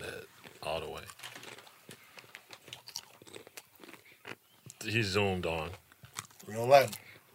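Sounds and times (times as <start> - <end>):
snack chips being chewed with crisp crunching: 0.4 - 4.5, 5.9 - 7.3
speech: 4.9 - 5.8, 6.5 - 7.1.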